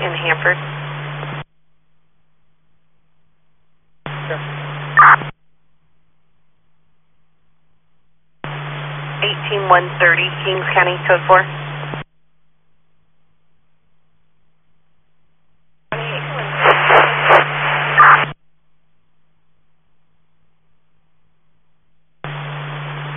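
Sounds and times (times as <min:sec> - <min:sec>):
radio scanner static: 0:00.0 - 0:01.5, 0:04.1 - 0:05.3, 0:08.4 - 0:12.0, 0:15.9 - 0:18.4, 0:22.2 - 0:23.1
steady hum: 0:00.0 - 0:18.4, 0:19.5 - 0:23.1
speech: 0:00.4 - 0:00.8, 0:09.7 - 0:11.6.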